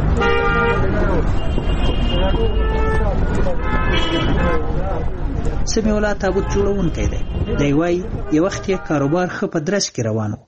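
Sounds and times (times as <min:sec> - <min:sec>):
dense steady rumble of engines and road noise: 0:00.0 - 0:09.3
cars and rickshaws honking: 0:00.0 - 0:09.4
speech: 0:05.8 - 0:10.4.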